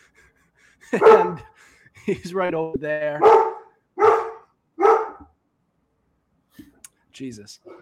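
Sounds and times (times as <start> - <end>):
laughter: 0.8 - 2.4
speech: 0.9 - 3.5, 7.2 - 7.8
dog barking: 1.0 - 1.5, 3.2 - 5.3.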